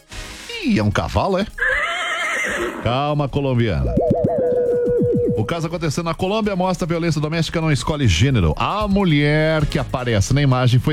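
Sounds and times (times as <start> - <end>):
speech: 0.6 - 1.7, 2.4 - 4.1, 4.9 - 10.9
horse whinnying: 1.6 - 2.9.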